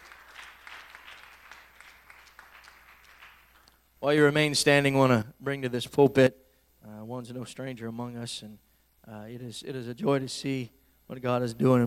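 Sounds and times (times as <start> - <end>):
crowd applauding in a large room: 0.0 - 3.8
speech: 4.0 - 6.4, 7.1 - 11.8.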